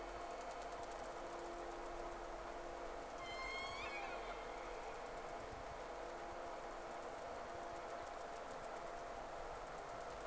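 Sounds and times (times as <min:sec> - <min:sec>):
constant hiss: 0:00.0 - 0:10.2
low steady hum: 0:00.0 - 0:10.2
whale whistle at sea: 0:03.2 - 0:04.6.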